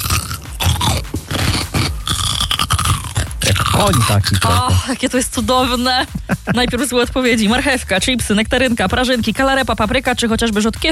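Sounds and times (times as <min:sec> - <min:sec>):
crunchy bite into a pickled cucumber: 0:00.0 - 0:04.5
loud chewing: 0:00.0 - 0:04.9
speech: 0:03.8 - 0:10.8.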